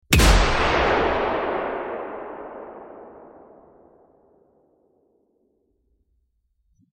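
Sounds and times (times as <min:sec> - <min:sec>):
sniper rifle shot: 0:00.1 - 0:04.6.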